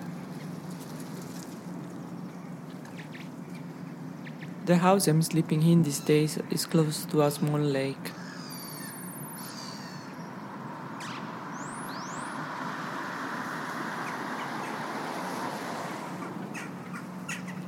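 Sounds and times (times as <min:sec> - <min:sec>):
birds chirping and calling by a lake: 0:00.0 - 0:12.4, 0:16.2 - 0:17.6
steady wash of outdoor noise: 0:00.0 - 0:17.6
speech: 0:04.7 - 0:08.2.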